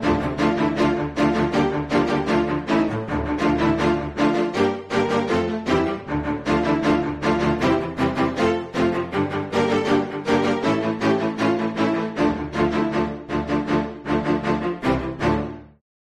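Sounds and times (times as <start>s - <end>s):
strings martele bow strokes: 0.0s - 15.6s.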